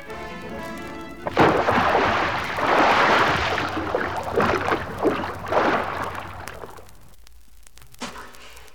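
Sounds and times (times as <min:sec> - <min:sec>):
churning, rushing water: 0:00.0 - 0:07.0
splash of someone diving off a pier into water: 0:01.2 - 0:07.0.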